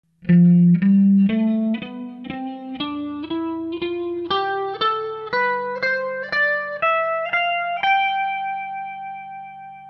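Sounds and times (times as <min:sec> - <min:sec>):
folk guitar: 0:00.1 - 0:09.8.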